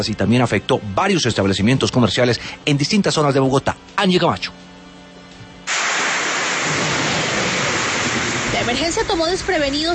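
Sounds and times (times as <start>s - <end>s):
speech: 0.0s - 4.6s, 8.7s - 9.9s
pounding rain in a windstorm in Bogotá, Colombia: 5.7s - 9.6s
hail in a windstorm in Bogotá, Colombia: 5.7s - 9.8s.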